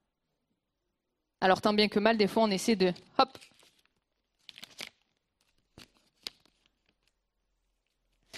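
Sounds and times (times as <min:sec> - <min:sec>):
speech: 0:01.4 - 0:03.5
sheet of paper being crumpled: 0:03.2 - 0:08.3.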